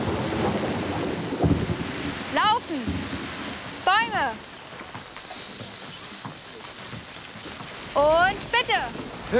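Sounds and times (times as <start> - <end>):
low rolling rumble of thunder: 0.0 - 3.6
steady rain: 0.0 - 9.3
speech: 8.0 - 9.3.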